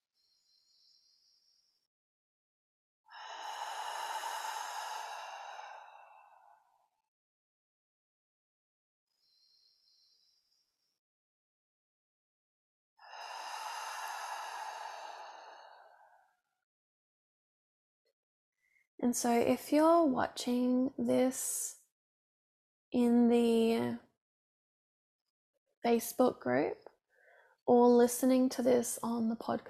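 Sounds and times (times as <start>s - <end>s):
deep inhale through the nose: 3.1s - 6.6s, 13.0s - 16.2s
long airy exhale through the mouth: 3.1s - 6.6s, 13.0s - 16.2s
speech: 19.0s - 21.8s, 22.9s - 24.1s, 25.8s - 26.8s, 27.7s - 29.6s.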